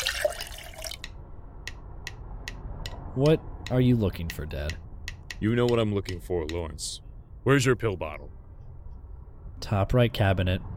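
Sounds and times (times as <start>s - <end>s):
water poured for a drink: 0.0s - 1.0s
scattered water drips: 0.0s - 1.2s
speech: 3.2s - 8.4s, 9.6s - 10.7s.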